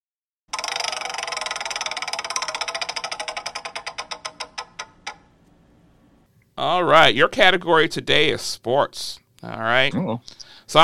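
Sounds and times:
prize wheel spinning and ticking: 0:00.5 - 0:05.4
speech: 0:06.6 - 0:10.8.

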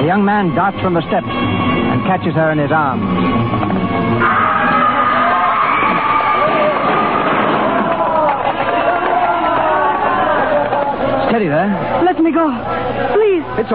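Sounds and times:
speech: 0:00.0 - 0:03.6, 0:11.3 - 0:13.7
loud dense crowd roaring and shrieking with panicked voices: 0:04.0 - 0:12.0
hysterical mob screaming in the streets: 0:04.2 - 0:11.3.

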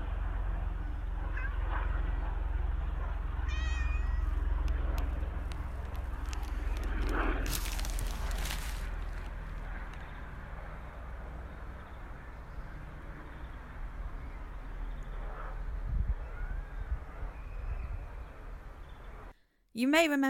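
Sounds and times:
steady low rumble of a plane: 0:00.0 - 0:19.5
female cat meowing outdoors on a sunny day: 0:01.3 - 0:01.6, 0:03.5 - 0:04.4
scattered clicks and rustles: 0:04.6 - 0:10.1
speech: 0:19.8 - 0:20.2.

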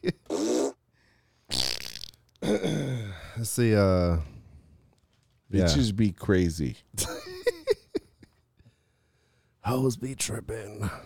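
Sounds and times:
farting: 0:00.3 - 0:00.8, 0:01.5 - 0:02.2
speech: 0:03.4 - 0:04.3, 0:05.5 - 0:07.2, 0:09.7 - 0:11.0.

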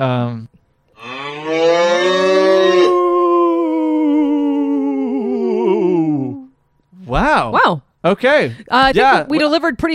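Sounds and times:
speech: 0:00.0 - 0:00.5, 0:07.4 - 0:09.9
spooky ghost-cow moo sound effect from a soundboard: 0:01.0 - 0:06.5.

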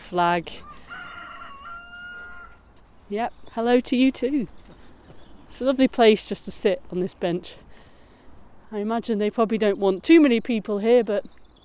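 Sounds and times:
speech: 0:00.1 - 0:00.7, 0:03.1 - 0:04.6, 0:05.5 - 0:07.6, 0:08.7 - 0:11.4
chicken crowing at allotments: 0:00.6 - 0:02.7.

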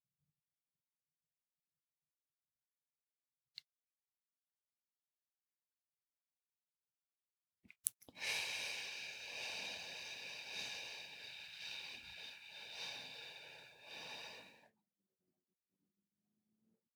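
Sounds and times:
long slow breath in a box breathing exercise: 0:08.2 - 0:14.7.

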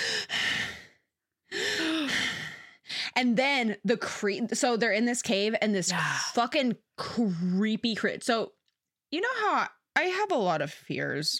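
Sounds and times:
woman imitating heavy creepy breathing and gasping: 0:00.0 - 0:03.2
speech: 0:03.2 - 0:11.3.

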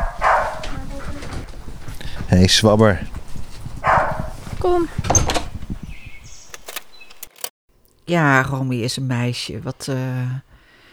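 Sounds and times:
family dog yelping bark: 0:00.0 - 0:01.4, 0:03.8 - 0:05.0
speech: 0:02.3 - 0:03.1, 0:04.6 - 0:05.2, 0:08.1 - 0:10.5.

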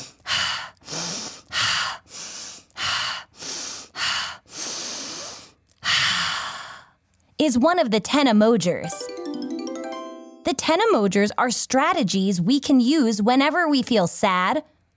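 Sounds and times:
deep breaths taken slowly: 0:00.0 - 0:07.0
speech: 0:07.4 - 0:09.2, 0:10.5 - 0:14.7.

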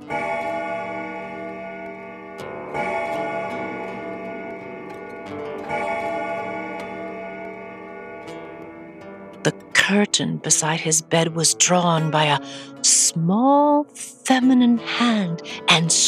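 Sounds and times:
grandfather clock striking the hour with deep resonant chimes: 0:00.0 - 0:13.7
grandfather clock ticking: 0:01.2 - 0:13.4
speech: 0:09.9 - 0:16.0.

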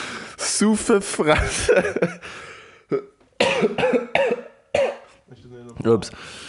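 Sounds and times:
speech: 0:00.6 - 0:04.4, 0:05.5 - 0:06.4
person coughing: 0:02.9 - 0:05.2.

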